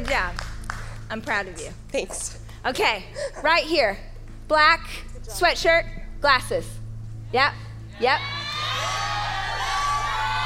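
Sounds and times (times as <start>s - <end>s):
speech: 1.1s - 9.0s
live crowd cheering and whooping: 8.0s - 10.4s.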